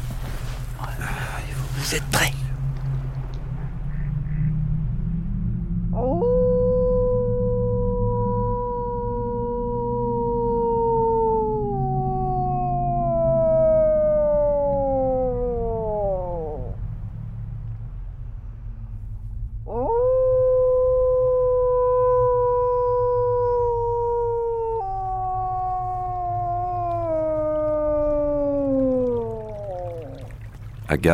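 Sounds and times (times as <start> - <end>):
low rumble: 0.0 - 31.1
speech: 1.8 - 2.4, 31.0 - 31.1
person howling like a wolf: 6.0 - 16.8, 19.7 - 30.3.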